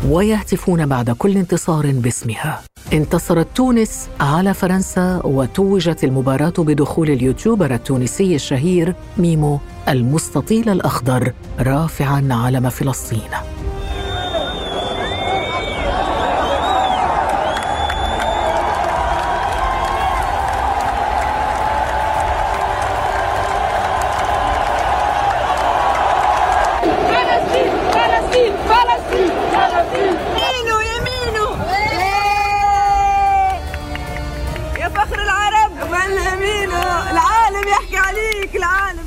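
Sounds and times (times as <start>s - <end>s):
speech: 0.0s - 13.5s
huge football stadium crowd of Moroccan fans roaring and cheering: 13.8s - 38.9s
massed voices of Moroccan fans chanting rhythmically: 13.9s - 31.9s.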